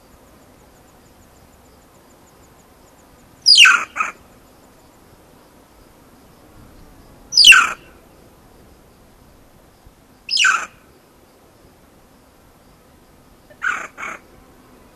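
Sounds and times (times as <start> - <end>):
banded mongoose screeches: 7.4 - 7.8, 10.3 - 10.7.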